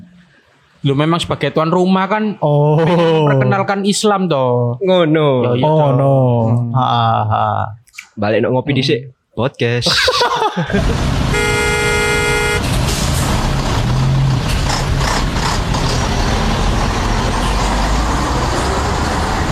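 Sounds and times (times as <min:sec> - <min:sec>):
speech: 0:00.8 - 0:11.4
laughter: 0:02.7 - 0:03.6, 0:09.8 - 0:11.1
engines and road noise of a traffic jam: 0:10.7 - 0:19.5
car horn blast in a traffic jam: 0:11.3 - 0:12.7.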